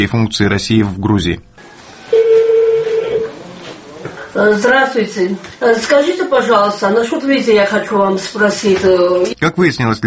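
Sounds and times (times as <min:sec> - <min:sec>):
speech: 0:00.0 - 0:01.5, 0:04.4 - 0:10.0
faint noise: 0:00.0 - 0:10.0
telephone tone on a call placed to a consulate: 0:01.6 - 0:03.4.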